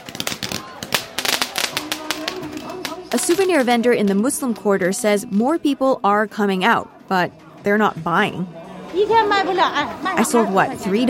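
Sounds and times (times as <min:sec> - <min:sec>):
fireworks crackling and popping at New Year along Xi'an city walls, China: 0:00.0 - 0:04.7
murmur of street crowd voices: 0:00.0 - 0:11.0
speech: 0:03.1 - 0:11.0.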